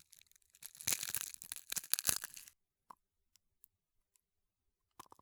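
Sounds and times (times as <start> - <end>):
egg shells crackling: 0.7 - 2.5.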